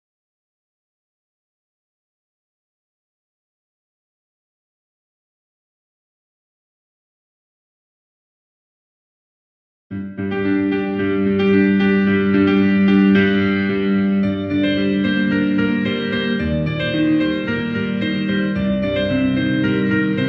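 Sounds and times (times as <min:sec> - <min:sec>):
piano karaoke: 0:10.0 - 0:20.2.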